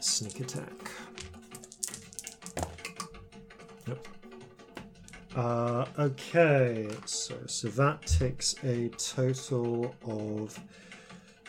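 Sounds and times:
dice clattering onto a hard floor: 0.0 - 3.1
speech: 0.2 - 1.2, 5.4 - 10.8.

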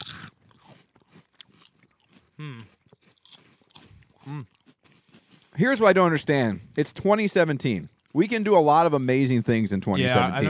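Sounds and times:
crunching of crispy corn snacks: 0.0 - 5.7
speech: 2.4 - 2.8, 4.2 - 4.6, 5.6 - 10.4.

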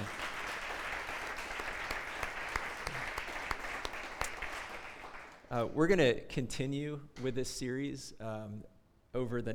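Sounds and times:
crowd applause: 0.0 - 5.4
speech: 5.5 - 9.5.

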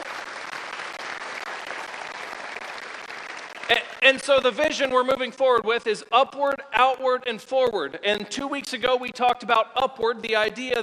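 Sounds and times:
roomful of people applauding: 0.0 - 5.7
speech: 3.7 - 10.8.

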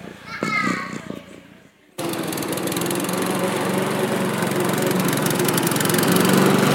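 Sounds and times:
children's voices: 0.0 - 1.7
lawn mower engine running: 2.0 - 6.7.

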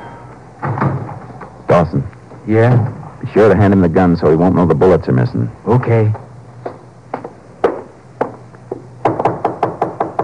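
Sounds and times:
speech: 1.7 - 6.2
knocking on a door: 7.6 - 10.2.

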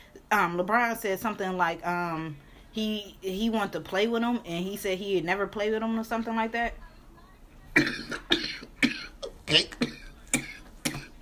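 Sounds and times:
speech: 0.3 - 6.8
harsh coughing: 7.8 - 11.1
throat clearing: 7.8 - 11.1.

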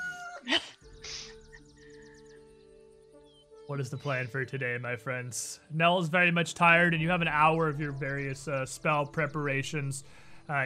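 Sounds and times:
rooster crowing: 0.0 - 0.5
speech: 3.7 - 10.6.

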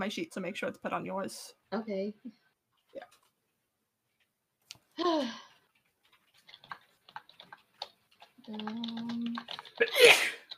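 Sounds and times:
speech: 0.0 - 3.2, 5.0 - 5.5, 8.5 - 10.4
person sneezing: 9.8 - 10.5.

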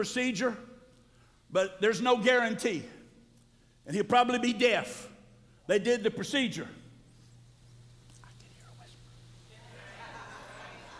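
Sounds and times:
speech: 0.0 - 0.7, 1.5 - 3.0, 3.9 - 5.1, 5.7 - 6.8
steady low electrical hum: 0.0 - 10.9
man whispering: 8.2 - 9.2
laughter: 9.6 - 10.9.

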